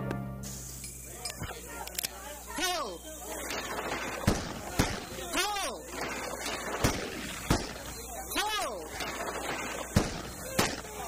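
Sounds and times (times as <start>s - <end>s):
chirping whistling tones: 2.4s - 11.0s
gunshots from target shooting: 3.3s - 11.0s.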